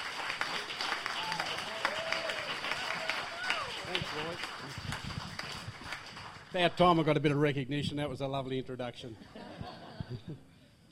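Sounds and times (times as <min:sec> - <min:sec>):
audience applause: 0:00.0 - 0:07.0
speech: 0:06.5 - 0:09.4, 0:10.1 - 0:10.5
laughter: 0:09.2 - 0:10.6.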